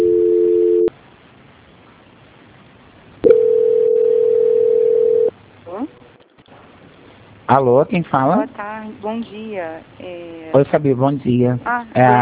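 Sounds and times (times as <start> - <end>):
telephone tones during a call transfer: 0.0 - 0.9, 3.2 - 5.3
speech: 7.5 - 12.2.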